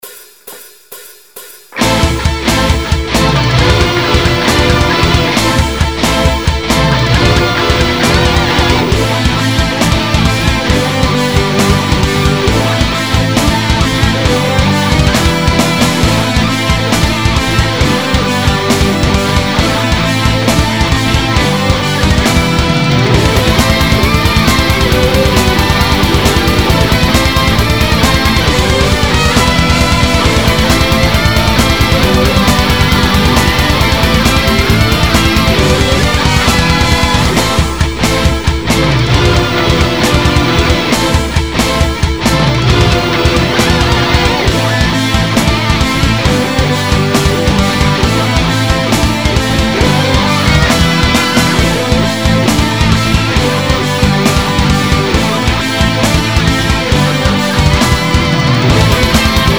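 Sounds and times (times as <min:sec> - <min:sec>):
metal boss theme music: 0:00.0 - 0:59.5.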